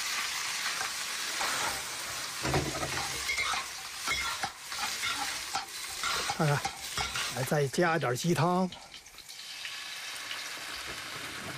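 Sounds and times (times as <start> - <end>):
chopped cattail shoots and small dried shrimp sizzling as stir-fried in a hot pan: 0.0 - 11.5
spatula scraping and clattering in a hot pan while stir-frying: 0.8 - 7.5
speech: 6.4 - 6.8, 7.4 - 8.8.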